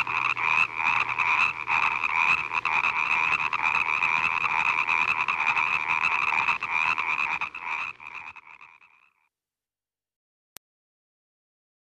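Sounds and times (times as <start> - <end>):
frog croaking in a dense rasping run: 0.0 - 9.3.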